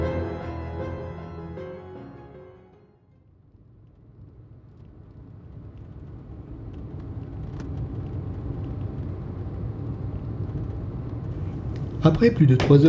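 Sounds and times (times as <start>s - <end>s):
car engine rumble on a road: 3.3s - 12.8s
car tire noise on a road: 3.5s - 12.8s
speech: 12.0s - 12.8s.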